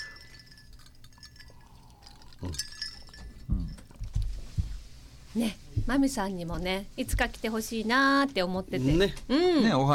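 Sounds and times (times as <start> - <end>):
glasses clinking together in a toast: 0.0 - 4.1
speech: 2.4 - 2.8, 5.3 - 9.9
soft thuds and handling sounds: 3.4 - 6.2.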